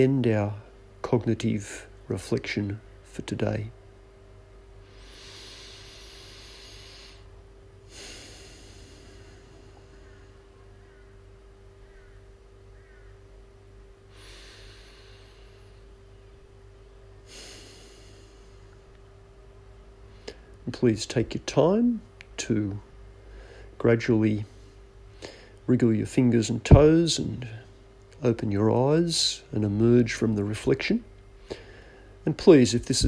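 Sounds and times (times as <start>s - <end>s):
speech: 0.0s - 3.8s, 20.8s - 22.9s, 23.8s - 24.5s, 25.2s - 31.6s, 32.2s - 33.0s
steady low hum: 0.0s - 33.0s
slow deep breaths during a guided reflection exercise: 4.7s - 11.2s, 14.1s - 16.0s, 17.2s - 18.9s, 23.0s - 23.8s, 24.4s - 25.7s, 31.4s - 32.2s.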